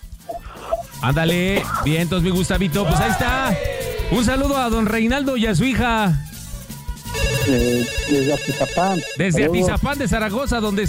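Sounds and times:
speech: 1.0s - 6.3s, 7.4s - 10.8s
telephone ringing for an incoming call: 7.1s - 9.8s.

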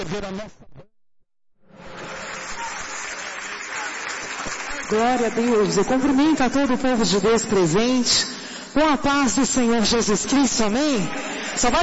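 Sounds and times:
speech: 0.0s - 0.6s, 4.9s - 11.8s
audience applauding at a church service: 1.8s - 6.2s.

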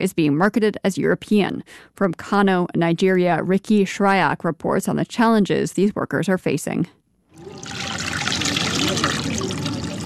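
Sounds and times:
speech: 0.0s - 7.9s
water sloshing and pouring as cotton fabric is soaked in a dye pit: 7.4s - 10.0s.

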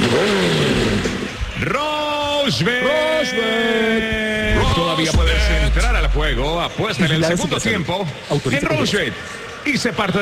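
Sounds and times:
motorcycle engine revving: 0.0s - 1.6s, 4.5s - 6.8s
speech: 2.5s - 4.3s, 5.0s - 10.2s.

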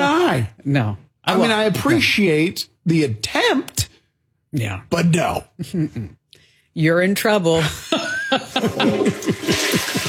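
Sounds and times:
speech: 0.4s - 3.6s, 4.5s - 6.2s, 6.8s - 9.6s
laughter: 7.6s - 10.0s
toilet flush sound effect: 8.6s - 10.0s.

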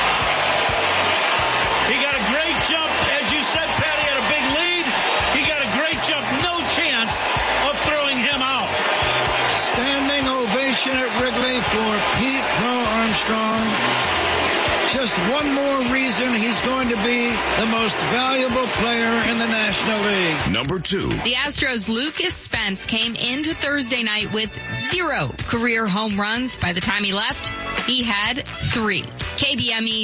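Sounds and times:
shouts and whoops from baseball stadium crowd: 0.0s - 22.3s
baseball stadium crowd roaring and cheering: 0.0s - 25.2s
speech: 14.9s - 30.0s.

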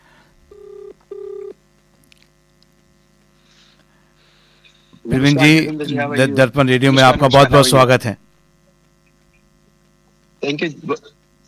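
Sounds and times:
electronic telephone tones of an outgoing call: 0.5s - 1.6s
speech: 5.1s - 8.2s, 10.6s - 11.1s.

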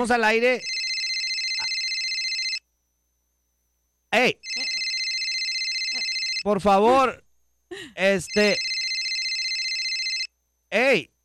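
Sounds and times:
speech: 0.0s - 0.7s, 4.1s - 4.7s, 6.4s - 8.7s, 10.7s - 11.1s
phone ringing with a bright warbling electronic tone: 0.6s - 2.6s, 4.4s - 6.5s, 8.3s - 10.3s.

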